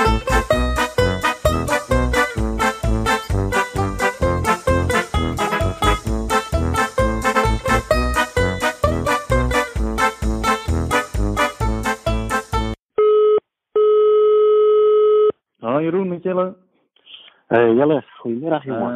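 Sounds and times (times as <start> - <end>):
upbeat music: 0.0 - 12.8
electronic ringing tone of an outgoing phone call: 13.0 - 15.4
speech: 17.5 - 18.9.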